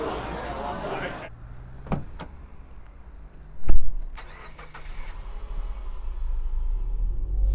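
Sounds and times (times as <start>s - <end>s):
car engine cranking, starting and rumbling: 0.0s - 7.5s
clicks and thumps: 1.8s - 4.1s.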